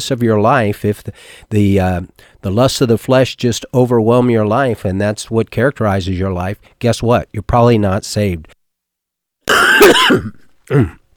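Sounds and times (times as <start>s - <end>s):
speech: 0.0s - 8.6s, 9.5s - 11.0s
person with a cold coughing harshly: 9.5s - 11.1s.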